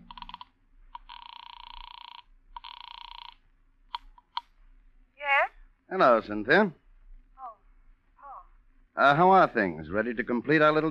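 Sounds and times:
telephone ringing tones: 0.0s - 3.4s
telephone dialing tones and clicks: 0.0s - 4.4s
speech: 5.9s - 6.8s, 9.0s - 10.8s.

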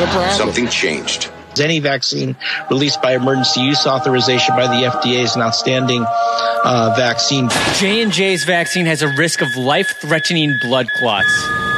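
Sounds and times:
speech: 0.0s - 11.6s
steady high-pitched electronic beep tone: 7.6s - 11.7s.

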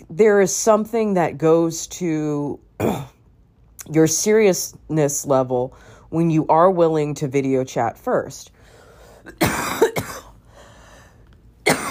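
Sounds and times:
speech: 0.2s - 3.1s, 3.8s - 8.6s, 9.2s - 9.6s
person coughing: 2.8s - 3.2s, 9.2s - 10.4s, 11.6s - 11.9s.

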